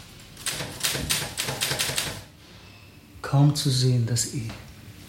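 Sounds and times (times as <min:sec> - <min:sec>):
mechanical typewriter keys clacking: 0:00.5 - 0:02.2
speech: 0:03.3 - 0:04.7.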